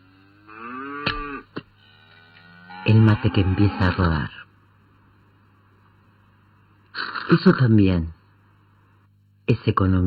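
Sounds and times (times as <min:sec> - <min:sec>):
cow mooing in a corral: 0:00.0 - 0:04.2
sharp knocks: 0:01.0 - 0:01.7
speech: 0:02.8 - 0:04.4, 0:07.3 - 0:08.2, 0:09.5 - 0:10.0.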